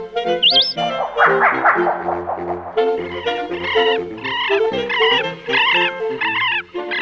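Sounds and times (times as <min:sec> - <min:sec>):
rising whistled note: 0:00.3 - 0:04.6
birds warbling, chirping and tweeting: 0:00.4 - 0:06.9.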